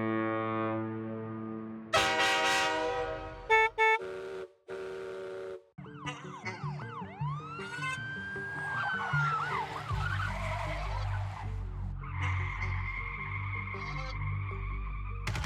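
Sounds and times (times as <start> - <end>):
brassy clown horns honking: 0.0 - 15.3
squeaky swooping toots: 5.8 - 15.3.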